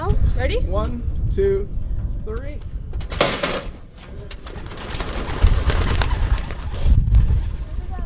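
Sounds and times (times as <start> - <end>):
speech: 0.4 - 2.7
flock of racing pigeons flapping wings taking off: 3.2 - 8.0.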